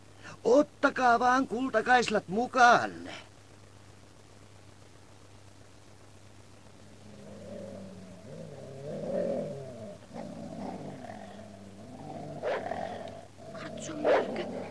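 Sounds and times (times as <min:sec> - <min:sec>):
speech: 0:00.4 - 0:03.2
several dogs growling low: 0:06.9 - 0:14.6
dogs barking sharply: 0:12.3 - 0:13.2, 0:14.0 - 0:14.6.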